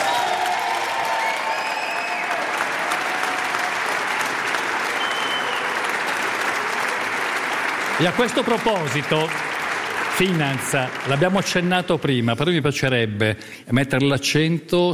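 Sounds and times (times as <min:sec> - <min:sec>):
faint cheers: 0:00.0 - 0:07.0
large live audience applauding at a live radio broadcast: 0:00.0 - 0:12.2
speech: 0:08.0 - 0:09.5, 0:10.2 - 0:14.9.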